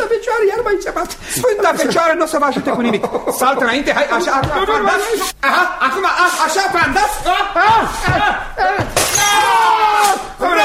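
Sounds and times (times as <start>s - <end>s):
speech: 0.1s - 10.6s
laughter: 1.4s - 8.8s, 10.4s - 10.6s
ceramic vase shattering: 8.8s - 10.3s.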